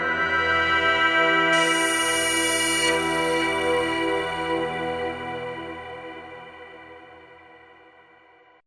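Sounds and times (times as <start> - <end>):
Roland V-Synth factory feedback pad: 0.1 - 7.0.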